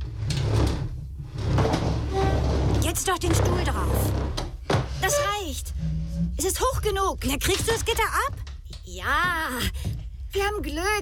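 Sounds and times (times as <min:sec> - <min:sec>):
desk being pushed across the floor against a wall: 0:00.0 - 0:06.4
speech: 0:02.9 - 0:04.3, 0:05.1 - 0:11.0.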